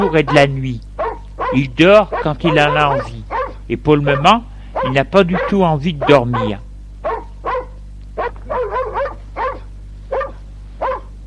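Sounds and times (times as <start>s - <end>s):
dog barking sharp yappy barks: 0.0s - 11.2s
steady low hum: 0.0s - 11.2s
speech: 0.1s - 0.9s, 1.5s - 6.6s.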